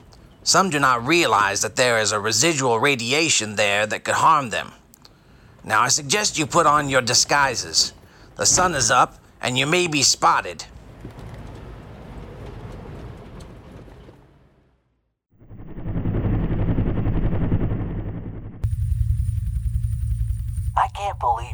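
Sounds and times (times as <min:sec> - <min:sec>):
speech: 0:00.4 - 0:04.8, 0:05.6 - 0:10.8
helicopter rotor chopping in flight overhead: 0:15.4 - 0:21.5.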